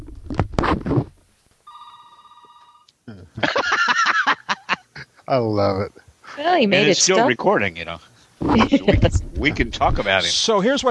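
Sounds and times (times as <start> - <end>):
telephone ringing with electronic tone and pulsing rings: 1.7 - 2.9
speech: 3.1 - 3.8, 5.3 - 10.8
laughter: 3.2 - 5.4, 8.5 - 9.1.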